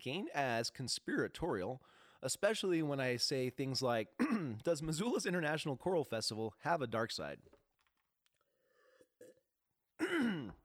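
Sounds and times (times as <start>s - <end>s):
speech: 0.0s - 7.6s
phlegmy throat clearing: 4.2s - 4.6s, 10.0s - 10.6s.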